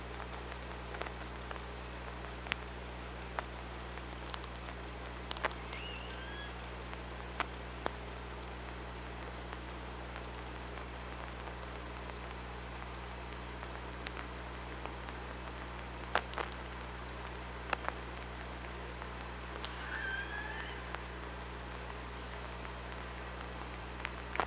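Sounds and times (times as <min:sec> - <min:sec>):
constant hydrophone hiss: 0:00.0 - 0:24.4
low hum: 0:00.0 - 0:24.4
orca wavering tonal call recorded underwater by hydrophone: 0:05.6 - 0:06.7, 0:19.6 - 0:21.3.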